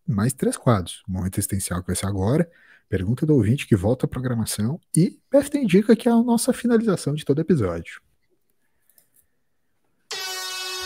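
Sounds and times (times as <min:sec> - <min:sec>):
speech: 0:00.1 - 0:08.1
air horn sound effect: 0:10.1 - 0:10.8.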